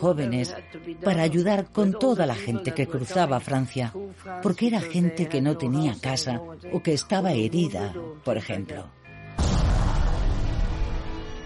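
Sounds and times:
speech: 0.0 - 9.5
single loud gunshot: 9.4 - 11.2.

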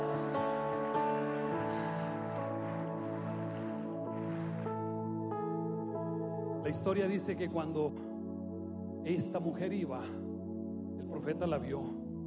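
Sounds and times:
audience applauding: 0.0 - 5.1
loud sustained keyboard chords: 0.0 - 12.2
speech: 6.6 - 8.1, 9.0 - 10.3, 11.1 - 12.0.

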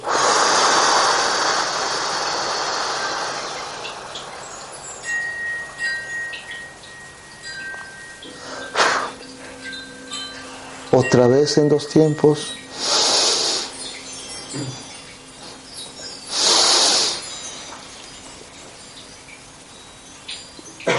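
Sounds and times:
person breathing deeply during a guided two-count breathing exercise: 0.0 - 5.2, 8.3 - 10.9, 12.5 - 17.4
speech: 11.1 - 12.9.

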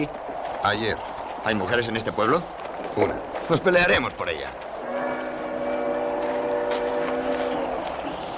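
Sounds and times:
speech: 0.0 - 4.6
approaching train rumbling: 0.0 - 8.3
sustained tonal horn-like train whistle: 4.8 - 7.8.

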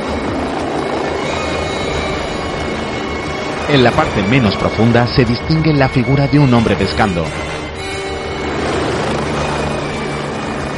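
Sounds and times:
helicopter flying low over an arid canyon with a narrow river: 0.0 - 10.7
speech: 3.7 - 7.6.

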